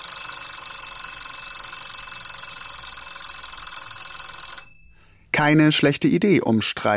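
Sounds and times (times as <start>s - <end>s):
continuous electronic ringing of phone alarm or kitchen timer: 0.0s - 5.0s
speech: 5.4s - 6.9s.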